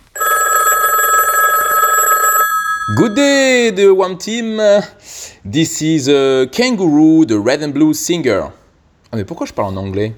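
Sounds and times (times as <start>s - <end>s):
answering machine messages played: 0.0s - 3.8s
telephone ringing with bright warbling electronic tone: 0.0s - 4.0s
speech: 2.9s - 10.1s.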